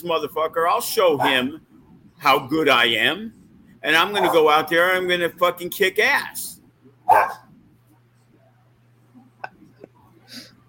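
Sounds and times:
speech: 0.0s - 7.4s
low steady hum: 0.0s - 10.6s
dog barking: 4.2s - 4.4s, 7.1s - 7.5s
dog yipping: 7.1s - 7.4s.

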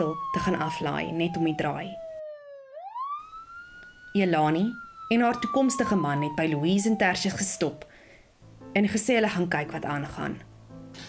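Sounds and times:
speech: 0.0s - 2.0s, 4.2s - 7.9s, 8.7s - 11.0s
police siren wailing: 0.0s - 8.0s.

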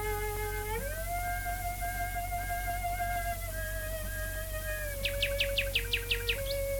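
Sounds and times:
nightingale singing in a back garden thicket south of London: 0.0s - 6.7s
steady low hum and hiss of a 1924 radio broadcast: 0.0s - 6.7s
sustained mellow cello notes improvised by a woman: 0.0s - 6.7s.

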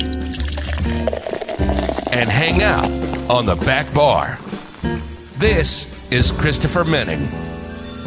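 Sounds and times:
drink poured into a glass: 0.0s - 5.4s
speech: 2.2s - 7.6s.

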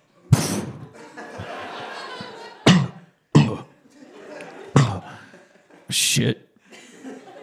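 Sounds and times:
laughter: 0.0s - 7.4s
voice imitating a smoke pellet being thrown down: 0.3s - 0.9s
person coughing: 2.6s - 3.7s, 4.8s - 5.2s
speech: 5.9s - 6.4s.

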